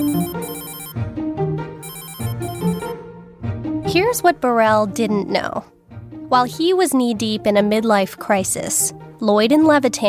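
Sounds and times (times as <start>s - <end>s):
telephone ringing: 0.0s - 1.0s, 1.8s - 3.0s
speech: 3.9s - 5.7s, 6.3s - 10.0s.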